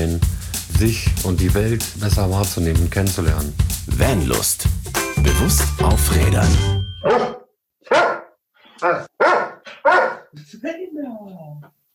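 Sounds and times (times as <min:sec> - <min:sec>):
speech: 0:00.0 - 0:07.3, 0:10.6 - 0:11.8
dog barking: 0:07.0 - 0:10.4.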